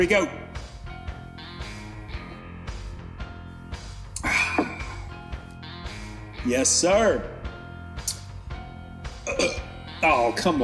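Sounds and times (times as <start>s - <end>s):
speech: 0.0s - 0.4s, 6.4s - 7.3s, 10.0s - 10.6s
weak stifled burp after drinking: 4.2s - 5.1s, 9.2s - 9.8s.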